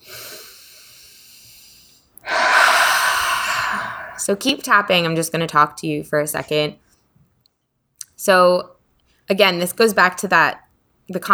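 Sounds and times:
deep breath during a tapping session: 0.0 - 4.4
speech: 4.2 - 6.8, 8.2 - 11.3.

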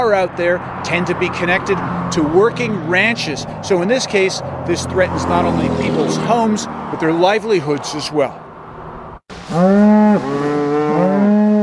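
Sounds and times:
speech: 0.0 - 8.4, 9.5 - 10.5
faint outdoor background: 0.0 - 11.6
cattle mooing during a ranch roundup: 9.4 - 11.6.

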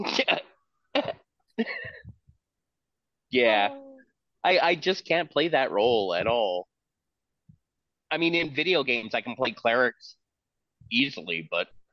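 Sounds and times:
person imitating a lion's cough: 0.0 - 1.2
speech: 3.3 - 3.8, 4.4 - 6.7, 8.1 - 10.2, 10.9 - 11.8.

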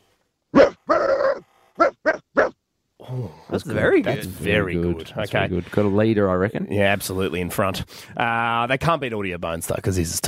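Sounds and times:
contestant in a competition imitating a dog barking: 0.5 - 2.6
speech: 3.1 - 10.2.

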